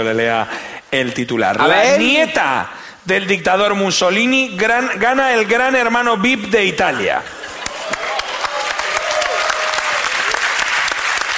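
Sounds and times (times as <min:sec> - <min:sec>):
speech: 0:00.0 - 0:07.4
crowd applauding: 0:07.4 - 0:11.3.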